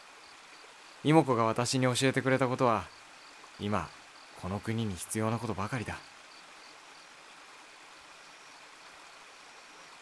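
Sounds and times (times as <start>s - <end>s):
small brook flowing with a soft rush and babble: 0.0s - 10.0s
speech: 1.0s - 3.0s, 3.6s - 6.1s.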